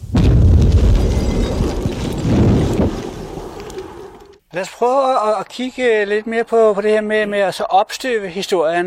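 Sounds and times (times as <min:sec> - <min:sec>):
deep rolling rumble of the explosion: 0:00.0 - 0:04.4
explosive charge set off by a detonator blasting: 0:00.0 - 0:04.4
speech: 0:04.6 - 0:08.8.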